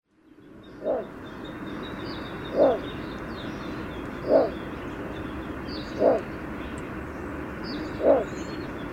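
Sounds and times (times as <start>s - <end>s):
constant noisy hum: 0.1s - 8.9s
other birds chirping faintly: 0.1s - 8.9s
little bittern giving a low gruff croak: 0.8s - 1.1s, 2.5s - 2.9s, 4.1s - 4.7s, 5.9s - 6.4s, 7.9s - 8.4s.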